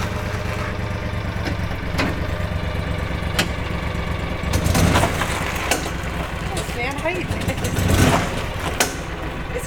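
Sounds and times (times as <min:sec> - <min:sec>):
vehicle engine running after being put in gear: 0:00.0 - 0:09.6.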